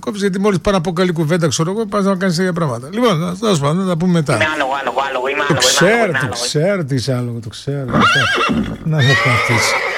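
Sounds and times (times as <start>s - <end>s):
speech: 0.0s - 9.9s
horse neighing in high-pitched whinnies: 7.9s - 9.9s.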